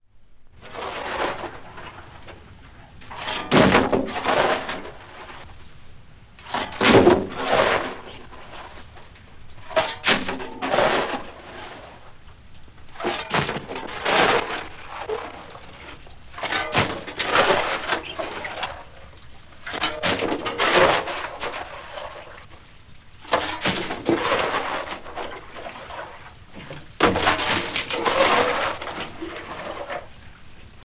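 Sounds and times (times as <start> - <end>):
shovelling in a coal mine: 0.6 - 5.8, 6.4 - 12.2, 12.8 - 22.6, 23.2 - 30.3.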